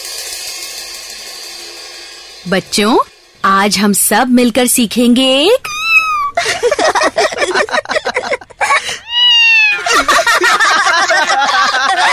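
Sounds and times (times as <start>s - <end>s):
speech: 2.4s - 5.7s
kitten meowing in a classroom: 5.6s - 6.4s, 8.9s - 10.2s
laughter: 6.4s - 9.1s, 9.7s - 12.1s.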